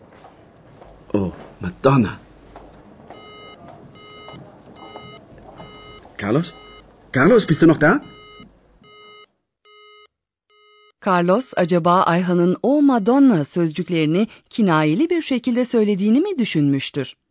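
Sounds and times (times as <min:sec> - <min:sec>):
speech: 0:01.1 - 0:02.2, 0:06.3 - 0:08.1, 0:11.1 - 0:17.2
telephone busy signal after call drops: 0:03.2 - 0:06.8, 0:08.0 - 0:11.0.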